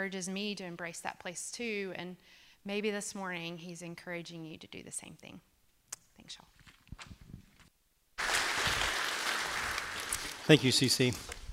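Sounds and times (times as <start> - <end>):
speech: 0.0 - 5.5, 6.3 - 7.1, 10.5 - 11.4
large crowd applauding: 8.2 - 10.9.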